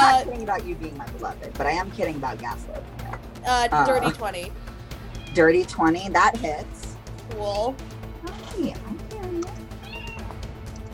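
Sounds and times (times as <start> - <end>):
speech: 0.1 - 4.7, 5.3 - 9.6
cat meowing: 5.2 - 5.6, 9.8 - 10.4.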